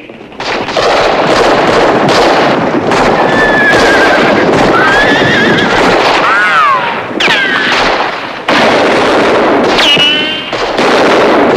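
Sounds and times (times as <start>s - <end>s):
commotion of a bandit raid on a cantina: 0.0s - 11.5s
loud gunfire in a bandit raid on a cantina: 0.0s - 11.5s
horses neighing and whinnying in a bandit raid: 3.1s - 7.9s.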